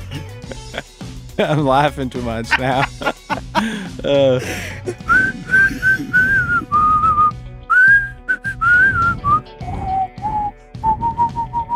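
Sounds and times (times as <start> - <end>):
laughter: 0.0 - 6.6
speech: 1.4 - 3.0, 3.6 - 4.9
person whistling the melody of a pop song: 5.0 - 11.7.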